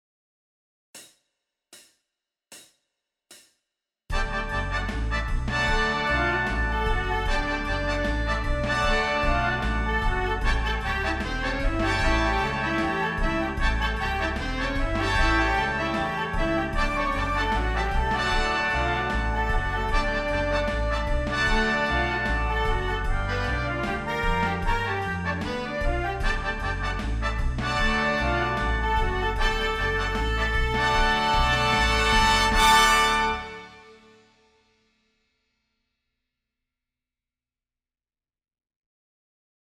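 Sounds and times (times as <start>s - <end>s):
horns playing in fifths: 4.1s - 34.3s.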